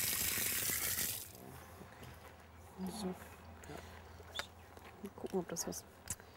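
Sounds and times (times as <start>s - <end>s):
garden hose water being shut off at a zoo: 0.0s - 1.4s
speech: 2.8s - 4.0s, 5.0s - 6.0s.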